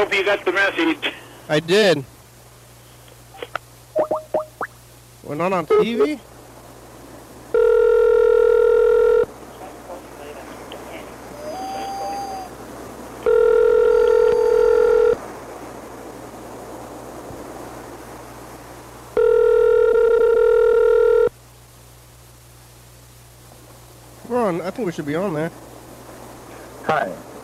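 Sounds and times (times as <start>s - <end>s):
speech: 0.0s - 2.1s, 5.3s - 6.3s, 24.8s - 25.6s, 26.9s - 27.3s
faint line hiss: 0.0s - 27.4s
phone line ringing: 7.5s - 9.3s, 13.2s - 15.2s, 19.2s - 21.3s.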